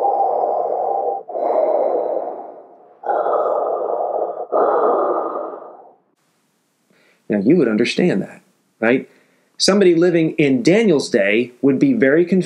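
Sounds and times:
person imitating heavy mechanical helmet-mask breathing: 0:00.0 - 0:06.2
speech: 0:07.3 - 0:12.4.

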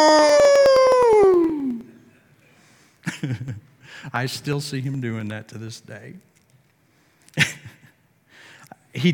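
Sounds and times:
man's voice imitating a hound's howl: 0:00.0 - 0:01.9
speech: 0:03.2 - 0:06.3.

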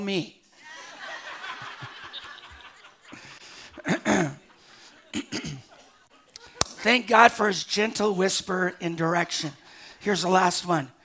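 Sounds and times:
speech: 0:00.0 - 0:00.4, 0:06.8 - 0:11.0
laughter: 0:00.6 - 0:07.0
person clearing throat: 0:03.8 - 0:04.4, 0:05.2 - 0:05.7.

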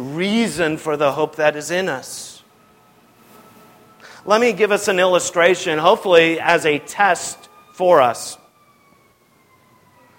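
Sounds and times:
speech: 0:00.0 - 0:02.4, 0:04.2 - 0:08.4
low noise: 0:00.0 - 0:10.1
faint ambulance siren outside: 0:00.8 - 0:10.1.

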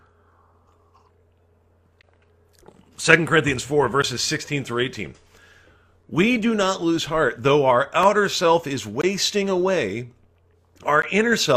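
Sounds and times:
person sipping coffee: 0:00.0 - 0:03.0
steady low hum: 0:00.0 - 0:11.5
soft mouth sounds: 0:00.1 - 0:03.0
speech: 0:03.0 - 0:05.3, 0:06.1 - 0:10.2, 0:10.8 - 0:11.5.

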